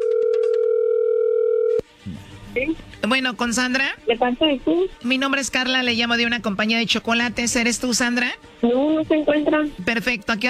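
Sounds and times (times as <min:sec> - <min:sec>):
telephone dial tone while a call is being placed: 0:00.0 - 0:01.8
speech: 0:02.6 - 0:10.4.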